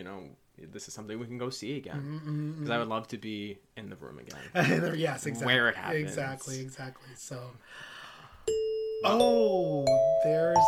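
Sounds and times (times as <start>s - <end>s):
speech: 0.0s - 10.6s
theatre places-call bell chime: 8.5s - 10.6s.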